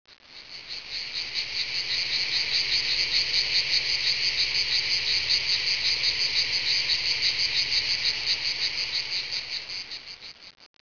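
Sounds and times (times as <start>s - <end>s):
cicadas: 0.1s - 10.7s.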